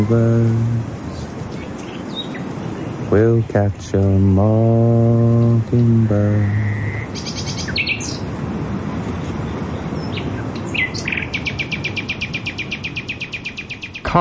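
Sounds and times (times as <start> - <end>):
speech: 0.0 - 1.3, 3.1 - 6.9
steady low rumbling background: 0.0 - 1.7, 2.4 - 11.5
nightingale singing: 0.0 - 8.4, 9.2 - 14.1.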